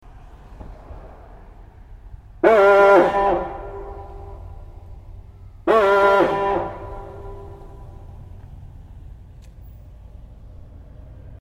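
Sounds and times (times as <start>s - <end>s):
fire horn: 2.4s - 8.4s.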